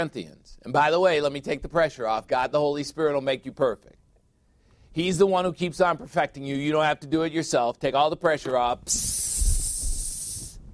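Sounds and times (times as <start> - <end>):
speech: 0.0 - 4.0, 4.9 - 9.4
voice imitating air escaping a balloon: 8.8 - 10.7.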